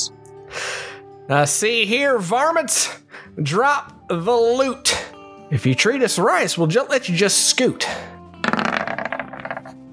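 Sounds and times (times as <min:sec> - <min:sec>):
speech: 0:01.3 - 0:08.2
dice rolling on a hard tabletop: 0:08.4 - 0:09.8.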